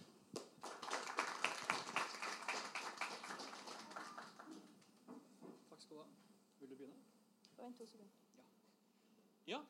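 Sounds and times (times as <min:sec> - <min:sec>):
crowd applauding warmly: 0:00.6 - 0:04.8.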